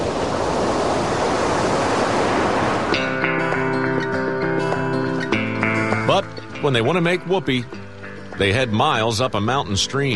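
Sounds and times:
ocean surf roaring: 0.0 - 10.1
sustained musical tones: 2.9 - 10.1
speech: 6.2 - 7.8, 8.4 - 10.1.

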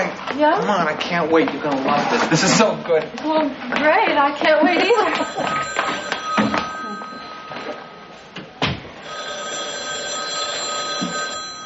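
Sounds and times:
speech: 0.4 - 6.0
telephone bell ringing: 4.8 - 11.6.

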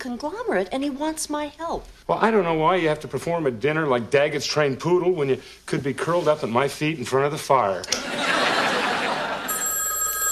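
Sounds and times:
speech: 0.0 - 8.3
laughter: 7.9 - 9.6
telephone ringing with bright rapid electronic trill: 9.5 - 10.3.

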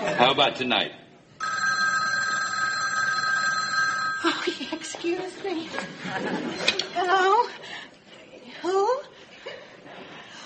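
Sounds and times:
speech: 0.2 - 1.0, 4.4 - 7.8, 8.6 - 9.1
telephone electric bell ringing: 1.4 - 4.7.

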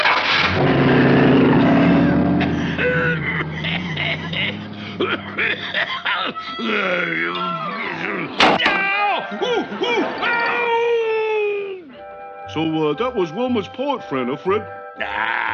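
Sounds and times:
sports car engine starting, revving and pulling away: 0.0 - 6.3
sharp bang: 0.4 - 5.2
swooping wailing vocal-like sounds: 0.5 - 8.4
laughter: 2.0 - 11.8
speech: 12.5 - 15.5.

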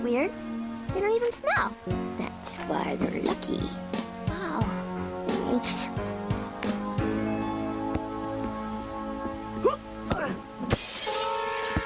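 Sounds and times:
speech: 0.0 - 4.0, 5.5 - 6.1
music: 0.0 - 11.8
overhead light glass shattering from a ball: 10.7 - 11.8
tinkling glass debris: 10.8 - 11.8.

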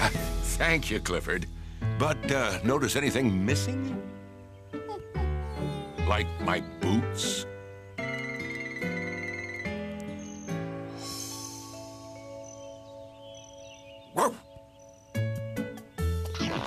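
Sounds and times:
tuneful music: 0.0 - 16.6
speech: 0.6 - 4.2, 6.1 - 7.5
dog barking: 14.1 - 14.4.

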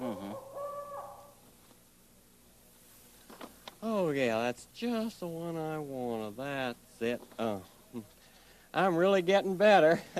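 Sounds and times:
drawn-out owl-like hoot: 0.0 - 1.4
speech: 4.1 - 10.1.

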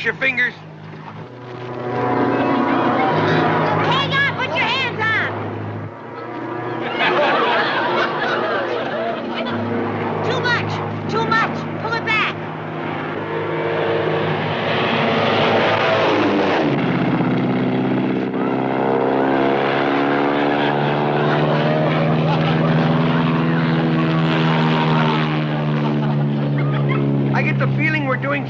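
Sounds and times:
speech: 0.0 - 0.7, 1.6 - 2.1
small propeller airplane engine droning during a stunt loop: 0.0 - 28.4
laughter: 6.0 - 10.9, 20.4 - 27.7.

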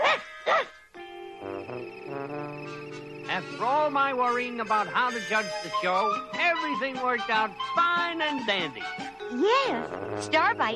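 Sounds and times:
dog barking at a dog show: 0.0 - 0.8
speech: 3.4 - 10.7.

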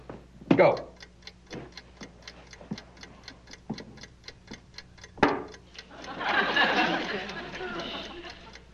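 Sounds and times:
mechanical timer ticking: 0.0 - 8.7
person talking: 0.5 - 1.0
laughter: 5.8 - 8.7.

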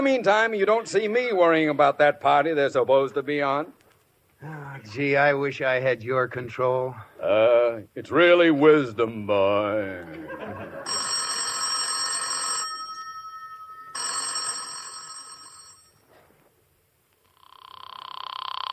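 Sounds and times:
speech: 0.0 - 3.8, 4.4 - 11.0
laughter: 10.0 - 11.0
old-fashioned telephone bell ringing: 10.6 - 16.1.

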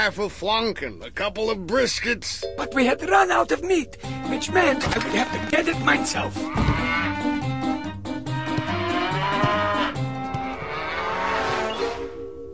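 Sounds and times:
speech: 0.0 - 7.1
cow mooing: 4.9 - 12.2.

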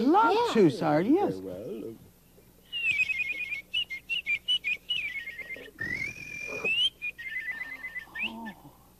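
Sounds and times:
speech: 0.0 - 2.0
man whistling an imitation of a make-believe bird song: 2.6 - 8.8.

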